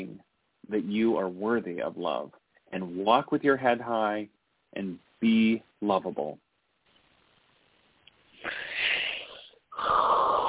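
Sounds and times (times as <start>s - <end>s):
speech: 0.7s - 6.4s
deep breath in: 8.4s - 10.4s.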